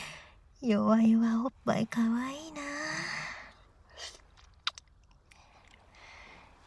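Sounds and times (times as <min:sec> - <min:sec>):
speech: 0:00.7 - 0:02.6
soft chewing and biting while eating a sandwich and cherries: 0:04.3 - 0:05.9.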